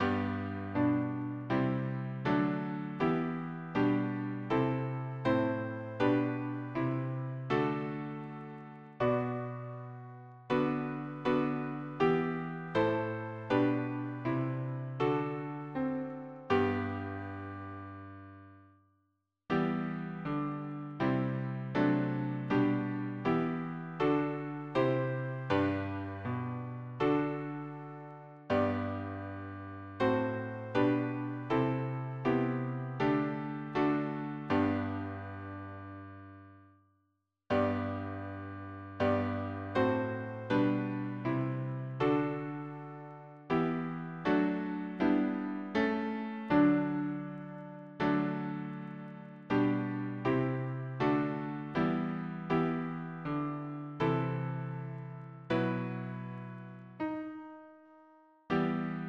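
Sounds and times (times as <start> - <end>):
piano harmony: 0.0 - 18.6, 19.5 - 36.6, 37.5 - 59.0.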